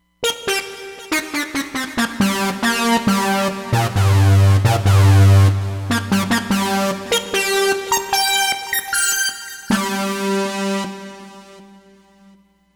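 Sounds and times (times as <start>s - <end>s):
synthesizer sync modulation: 1.5s - 10.8s.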